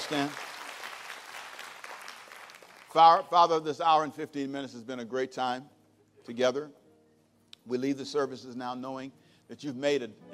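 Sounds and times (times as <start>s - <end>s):
audience clapping: 0.0s - 3.2s
speech: 0.1s - 0.5s, 2.9s - 6.8s, 7.6s - 10.3s.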